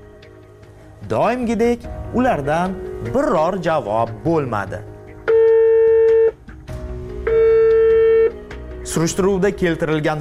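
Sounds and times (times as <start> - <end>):
speech: 1.0 - 4.9, 9.0 - 10.1
telephone line tone while calling an anti-corruption agency in Uzbekistan: 5.3 - 6.4, 7.3 - 8.4.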